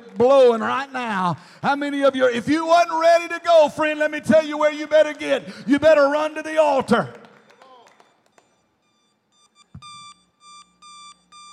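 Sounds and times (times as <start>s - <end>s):
speech: 0.2s - 7.2s
electronic alarm beeping: 7.3s - 11.5s.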